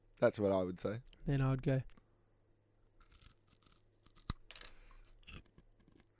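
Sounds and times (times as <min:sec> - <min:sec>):
speech: 0:00.2 - 0:02.0
person chewing popcorn: 0:03.0 - 0:04.4.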